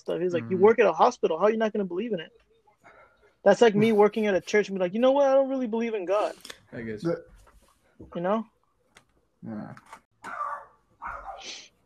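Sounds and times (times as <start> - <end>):
speech: 0.0 - 2.5, 3.4 - 7.3, 8.0 - 8.5, 9.4 - 10.5
dog barking: 10.2 - 11.5.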